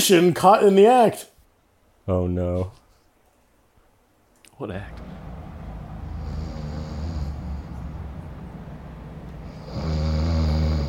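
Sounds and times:
speech: 0:00.0 - 0:01.3, 0:02.1 - 0:02.8, 0:04.6 - 0:05.2
man snoring loudly: 0:06.0 - 0:08.1, 0:09.4 - 0:10.8.

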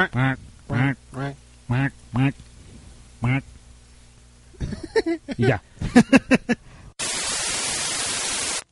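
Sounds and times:
speech: 0:00.0 - 0:01.0, 0:02.2 - 0:02.4
person imitating duck quacks: 0:00.0 - 0:02.4, 0:03.2 - 0:03.5
laughter: 0:04.6 - 0:06.6.

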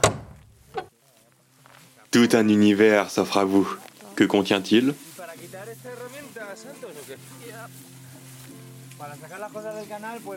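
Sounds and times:
door latch click and creak: 0:00.0 - 0:00.9
speech: 0:02.1 - 0:07.9, 0:09.0 - 0:10.3.

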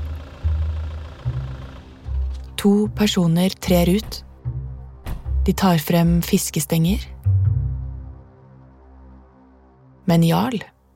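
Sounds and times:
car engine rumbling as the vehicle pulls up: 0:00.0 - 0:06.2
speech: 0:02.6 - 0:04.3, 0:05.5 - 0:07.1, 0:10.1 - 0:10.7.

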